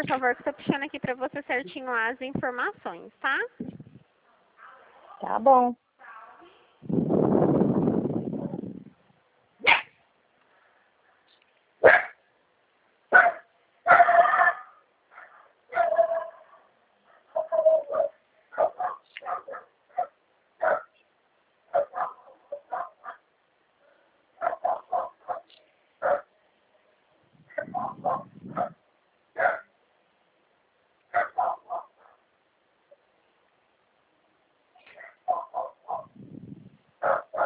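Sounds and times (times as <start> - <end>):
speech: 0.0 - 3.8, 5.2 - 5.8
low rumbling noise: 6.8 - 9.1
dogs barking angrily: 9.6 - 10.0, 11.8 - 12.2, 13.1 - 20.9, 21.7 - 23.3, 24.4 - 26.3, 27.5 - 28.8, 29.4 - 29.7, 31.1 - 32.3, 34.8 - 36.2, 37.0 - 37.4.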